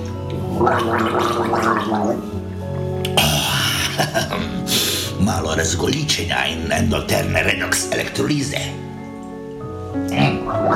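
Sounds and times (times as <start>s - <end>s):
person gargling a sip of solution from a glass: 0.4s - 2.3s, 3.0s - 4.7s, 10.2s - 10.7s
speech: 0.6s - 2.4s, 5.3s - 8.8s, 10.0s - 10.7s.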